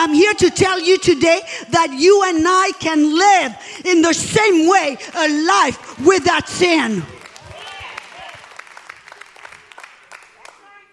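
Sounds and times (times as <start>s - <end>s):
speech: 0.0s - 7.2s
scattered hand claps from a church audience during a sermon: 3.4s - 10.7s.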